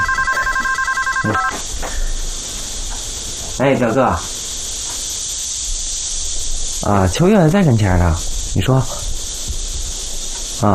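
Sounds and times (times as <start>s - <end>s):
telephone ringing with electronic warble: 0.0s - 1.6s
speech: 1.2s - 1.6s, 3.6s - 4.4s, 6.8s - 9.0s.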